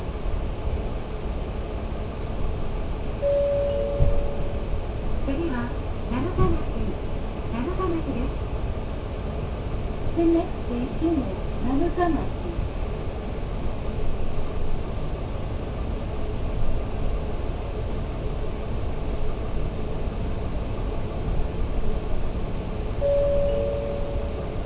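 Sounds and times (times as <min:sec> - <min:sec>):
Aizu Railway train rumbling heard from inside the carriage: 0:00.0 - 0:24.6
brief higher tone: 0:03.2 - 0:04.7, 0:23.0 - 0:24.4
speech: 0:12.0 - 0:12.4.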